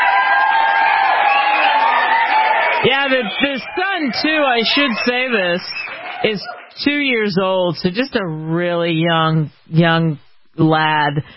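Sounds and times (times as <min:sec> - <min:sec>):
audience cheering and whooping: 0:00.0 - 0:06.8
speech: 0:02.8 - 0:11.3.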